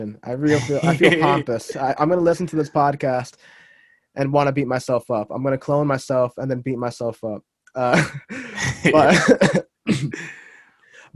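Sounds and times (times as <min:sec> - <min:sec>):
speech: 0:00.0 - 0:03.6, 0:04.2 - 0:10.4
laughter: 0:00.5 - 0:02.6, 0:07.9 - 0:09.6
person clearing throat with a hair caught in the throat: 0:07.9 - 0:10.4
person coughing with a hair caught in the throat: 0:08.0 - 0:10.4.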